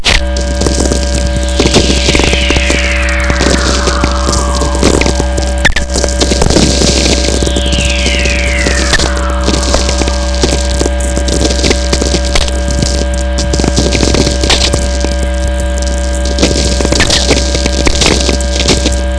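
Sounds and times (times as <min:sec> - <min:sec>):
whistler from natural VLF radio emissions: 0:00.1 - 0:19.0.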